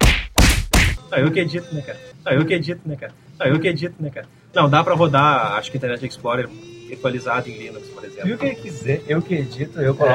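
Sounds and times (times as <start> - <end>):
heavy punch sound effects: 0.0 - 1.0
speech: 1.1 - 10.1.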